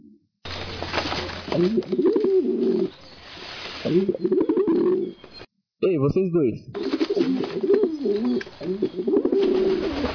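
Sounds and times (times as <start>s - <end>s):
pigeons cooing: 0.9s - 3.1s, 3.8s - 5.2s, 6.8s - 10.1s
speech: 1.5s - 3.2s, 3.8s - 4.4s, 5.8s - 10.1s.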